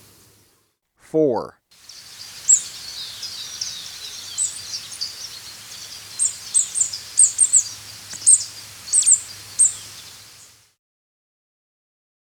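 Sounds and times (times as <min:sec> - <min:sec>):
speech: 0:01.1 - 0:01.6
scrub tanager high chip calls in Ecuador: 0:01.8 - 0:10.5.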